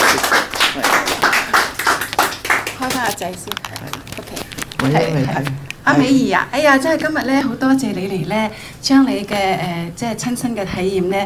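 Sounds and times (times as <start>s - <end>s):
applause from a few people: 0.0s - 5.6s
speech: 3.2s - 11.2s.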